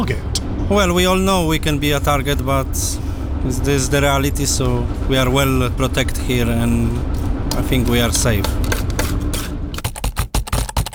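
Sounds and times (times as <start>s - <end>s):
speech: 0.1s - 8.6s
typing on a computer keyboard at a desk: 9.8s - 10.9s.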